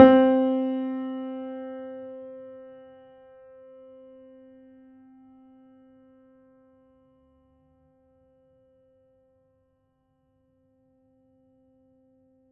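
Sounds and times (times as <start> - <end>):
piano body resonance at C3: 0.0 - 2.3.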